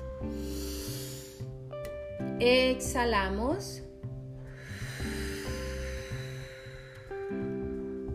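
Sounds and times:
slow deep breath drawn in through the nose: 0.2 - 1.7, 4.4 - 8.0
speech: 2.4 - 3.8.

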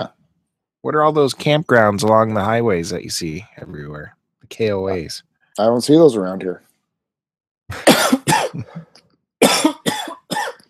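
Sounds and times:
speech: 0.8 - 6.7
hacking cough: 7.7 - 10.6.

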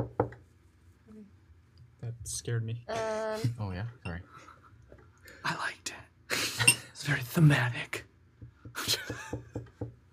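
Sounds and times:
knocking on a hard wooden chamber door: 0.0 - 0.4, 8.4 - 10.0
speech: 2.2 - 4.5, 5.4 - 6.0, 7.0 - 8.0.

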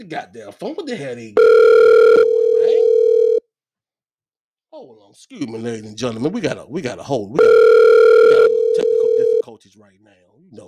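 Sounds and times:
speech: 0.0 - 3.0, 4.8 - 8.1, 8.8 - 10.6
telephone tone after a call drops: 1.4 - 3.4, 7.4 - 9.4.

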